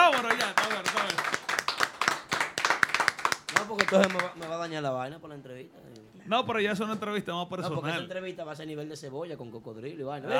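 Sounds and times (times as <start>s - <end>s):
people cheering: 0.0s - 1.6s
several people clapping: 0.0s - 4.8s
speech: 3.9s - 10.3s.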